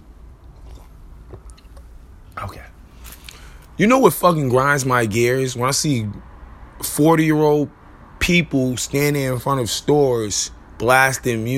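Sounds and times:
low hum: 0.0s - 11.5s
person drinking water and swallowing: 0.4s - 2.0s
speech: 2.4s - 2.7s, 3.8s - 11.5s.

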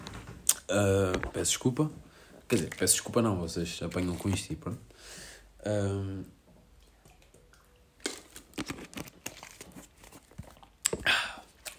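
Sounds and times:
speech: 0.7s - 6.4s
plastic water bottle crinkling and crackling: 1.0s - 1.9s, 2.5s - 4.8s, 8.0s - 11.7s
person sipping water from a plastic bottle: 6.8s - 11.7s.

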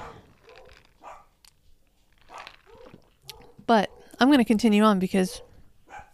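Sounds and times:
dog barking: 0.0s - 1.3s, 2.3s - 4.2s, 5.3s - 6.1s
speech: 3.7s - 5.5s.

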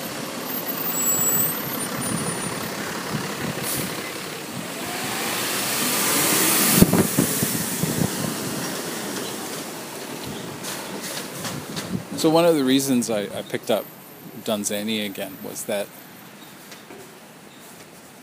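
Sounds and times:
dump truck engine idling: 0.0s - 11.7s
speech: 12.2s - 16.0s.

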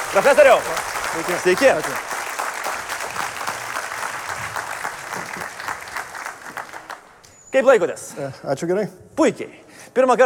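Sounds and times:
audience applause welcoming a guest at an evening show: 0.0s - 7.2s
speech: 0.1s - 2.1s, 7.6s - 10.2s.

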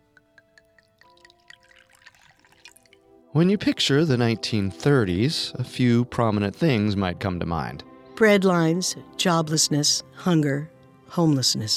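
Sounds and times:
drink pouring into a glass with rising pitch: 0.0s - 3.1s
quick clinking drips into a glass: 0.0s - 3.2s
speech: 3.4s - 11.7s.

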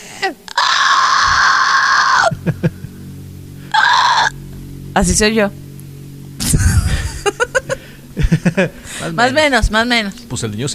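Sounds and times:
speech: 0.2s - 0.7s, 5.0s - 5.7s, 8.4s - 10.7s
voice imitating a child's shrill scream: 0.5s - 2.3s, 3.7s - 4.4s
laughter: 2.2s - 3.0s, 6.4s - 9.2s.

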